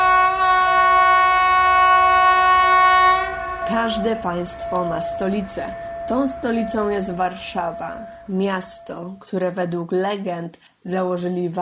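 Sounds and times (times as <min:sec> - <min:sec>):
passenger train horn arriving in Warsaw: 0:00.0 - 0:09.2
speech: 0:03.8 - 0:11.6.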